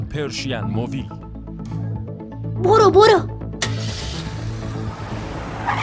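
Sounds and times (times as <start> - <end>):
speech: 0.2 - 1.2, 2.6 - 3.4
video game car engine drone: 3.6 - 5.8
video game car tires skidding: 3.7 - 5.8.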